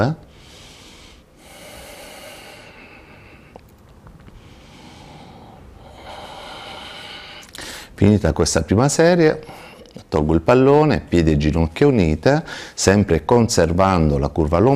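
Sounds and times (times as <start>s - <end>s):
speech: 0.0s - 0.2s, 8.0s - 14.7s
deep breaths in and out during a core exercise on the floor: 0.2s - 8.0s, 9.4s - 10.0s, 12.4s - 12.8s.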